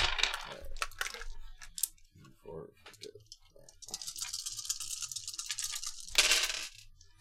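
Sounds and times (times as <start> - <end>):
six dice rolled during a tabletop role-playing game: 0.0 - 2.0, 3.7 - 7.1.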